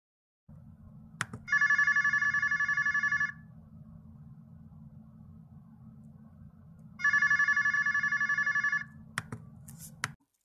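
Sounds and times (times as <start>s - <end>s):
low constant hum: 0.5s - 10.0s
electronic telephone ringing tone while placing a call: 1.4s - 3.5s, 7.0s - 9.0s.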